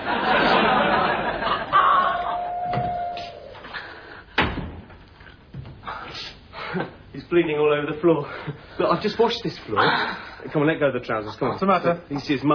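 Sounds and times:
laughter: 0.0s - 2.6s
steady noise: 0.0s - 12.5s
door swinging shut with a solid thud: 4.4s - 5.0s
speech: 7.4s - 12.5s.

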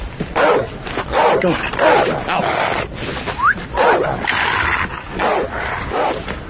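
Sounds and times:
dog barking aggressively with harsh loud barks: 0.3s - 2.4s, 3.7s - 6.3s
speech: 1.4s - 2.7s.

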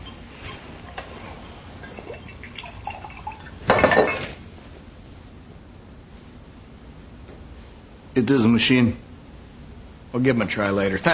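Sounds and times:
drink poured into a glass: 1.8s - 3.6s
drips: 1.8s - 4.2s
speech: 8.2s - 9.1s, 10.1s - 11.1s.

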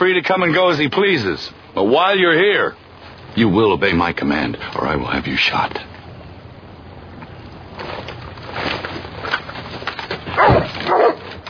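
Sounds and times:
speech: 0.0s - 2.8s, 3.4s - 5.9s
noisy background: 0.0s - 11.4s
dog guarding a wagon barking: 10.4s - 11.3s.

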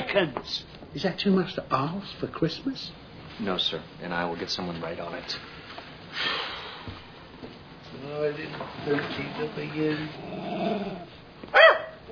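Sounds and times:
soft noise: 0.0s - 12.1s
speech: 0.1s - 7.0s, 8.1s - 12.1s
dog growling: 10.1s - 11.2s
dog barking: 11.5s - 12.0s.

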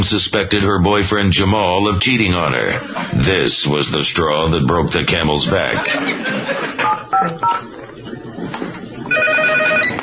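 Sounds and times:
speech: 0.0s - 7.4s
laughter: 2.4s - 3.5s, 4.6s - 9.2s
electronic telephone beeps: 9.1s - 10.0s
steady warbling phone ring: 9.1s - 10.0s.

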